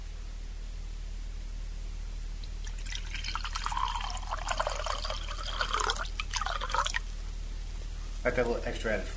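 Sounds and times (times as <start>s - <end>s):
steady low hum: 0.0s - 9.1s
wine pouring into a glass: 2.6s - 7.1s
speech: 8.4s - 9.1s.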